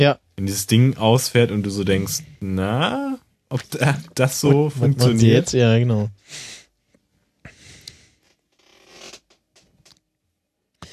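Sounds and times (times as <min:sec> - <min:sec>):
speech: 0:00.0 - 0:06.5
breathy sounds: 0:07.5 - 0:08.2
worn chair creaking: 0:08.2 - 0:10.0.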